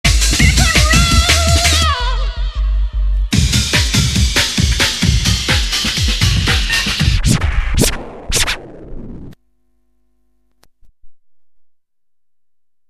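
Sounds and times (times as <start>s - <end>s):
old skool drum and bass jungle music on radio: 0.0s - 9.4s.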